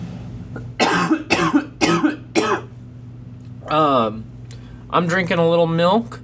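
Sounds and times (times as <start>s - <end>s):
harsh coughs: 0.8s - 2.7s
speech: 3.7s - 4.3s, 4.9s - 6.2s.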